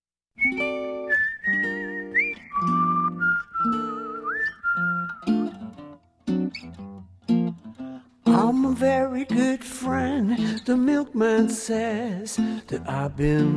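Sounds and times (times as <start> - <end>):
man whistling a smooth wavering melody: 0.4 - 5.5
speech: 8.8 - 13.5.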